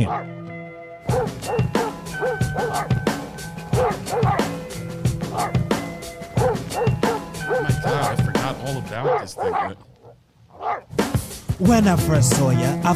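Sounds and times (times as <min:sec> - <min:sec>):
rhythmic dog barks chopped into a beat: 0:00.0 - 0:00.3, 0:01.1 - 0:03.1, 0:03.7 - 0:04.6, 0:05.3 - 0:05.7, 0:06.4 - 0:10.9
speech: 0:00.0 - 0:00.4, 0:08.5 - 0:09.9, 0:11.6 - 0:12.9.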